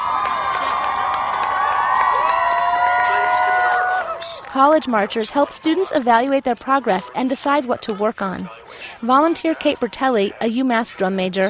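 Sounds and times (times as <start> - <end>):
young students whooping and cheering from sidelines in a parking lot: 0.0 - 5.6
speech: 4.6 - 11.4.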